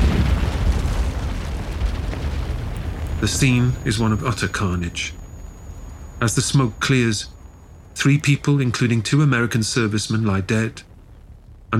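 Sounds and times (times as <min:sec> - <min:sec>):
bomb of plastic explosives and shrapnel detonating in a crowded nightclub: 0:00.0 - 0:11.7
speech: 0:03.2 - 0:05.2, 0:06.2 - 0:07.4, 0:08.0 - 0:10.9.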